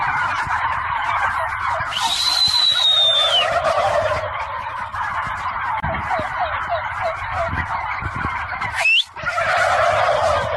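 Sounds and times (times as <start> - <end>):
large flock of turkeys gobbling: 0.0 - 10.5
sharp human whistle: 1.9 - 3.4, 8.8 - 9.1.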